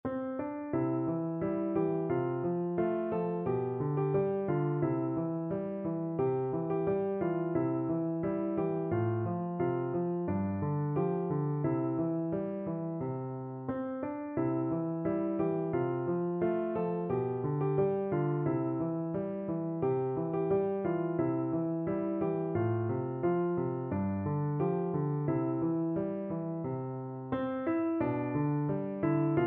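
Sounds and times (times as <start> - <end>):
piano piece: 0.0 - 29.4.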